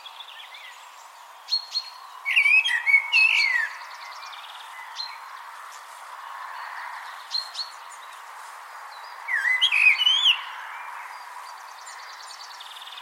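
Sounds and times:
common blackbird Turdus merula singing: 0.0s - 5.9s, 8.9s - 13.0s.

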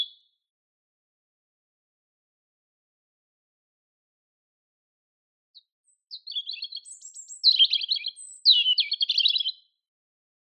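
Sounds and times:
European robin Erithacus rubecula singing: 0.0s - 0.2s, 5.6s - 9.8s.

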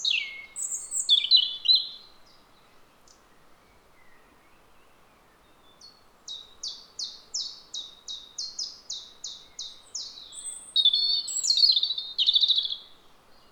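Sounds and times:
European robin Erithacus rubecula song: 0.0s - 2.1s, 6.3s - 13.5s.

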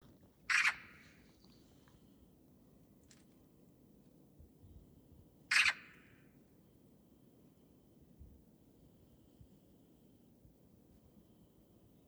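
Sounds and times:
Eurasian magpie Pica pica squawks: 0.5s - 1.0s, 5.5s - 6.0s.

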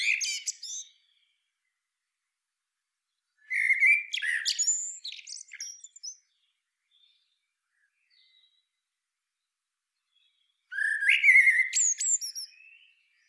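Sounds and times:
Eurasian blackbird, Turdus merula, singing warbled fluty phrases with scratchy twitters: 0.0s - 1.5s, 3.3s - 8.8s, 10.0s - 13.2s.

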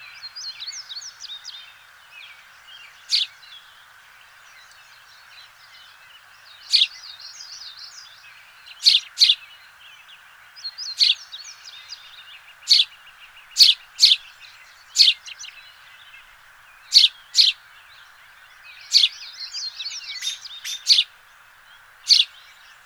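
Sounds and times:
House sparrow Passer domesticus giving loud sharp chirps: 2.8s - 3.6s, 6.5s - 9.5s, 10.6s - 22.8s
soft twittering: 12.6s - 22.8s.

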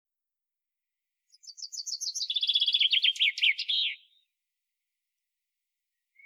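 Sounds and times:
Common chaffinch song: 1.3s - 4.4s, 5.9s - 6.2s.

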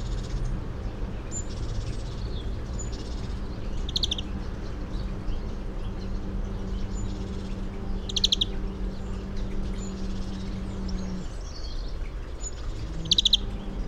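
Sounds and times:
European greenfinch Chloris chloris twittering bursts: 0.0s - 13.8s
low steady hum and rumbling noise: 0.0s - 13.8s.

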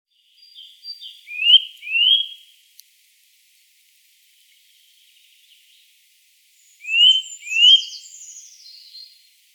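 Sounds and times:
Eurasian nuthatch short rising whistled notes: 0.4s - 2.4s, 6.6s - 9.1s.

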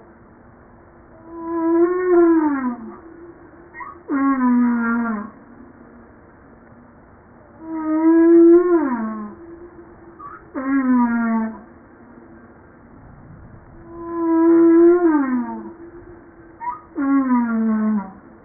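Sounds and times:
humpback whale song: 1.1s - 6.0s, 7.5s - 12.4s, 13.8s - 18.4s.

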